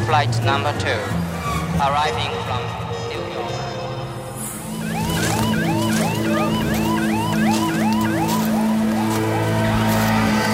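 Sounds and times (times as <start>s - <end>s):
speech: 0.1s - 2.9s
ambulance siren wailing: 2.5s - 10.5s
police siren wailing: 4.4s - 10.5s.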